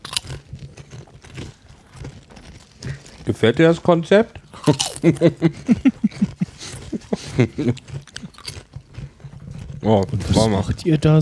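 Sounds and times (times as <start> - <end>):
crunchy honey-mustard potato chips being bitten and chewed: 0.0 - 11.2
speech: 3.2 - 6.3, 7.4 - 8.0, 9.8 - 11.2
laughter: 4.8 - 7.9.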